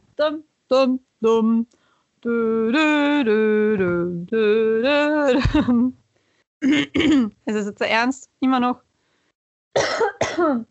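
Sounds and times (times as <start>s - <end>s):
speech: 0.2s - 6.0s, 6.6s - 8.9s, 9.7s - 10.6s
harsh throaty coughs: 6.6s - 7.3s, 9.8s - 10.6s.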